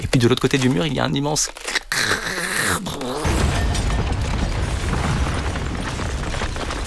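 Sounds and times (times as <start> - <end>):
speech: 0.2 - 1.8
ceiling collapsing crash: 3.2 - 6.8
rumble and clatter of falling debris: 3.3 - 6.8.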